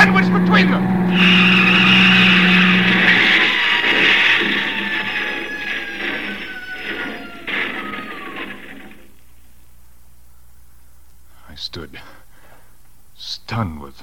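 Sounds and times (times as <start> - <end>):
car tires screeching: 0.0 - 9.3
car engine whining while swerving off the road: 0.0 - 9.6.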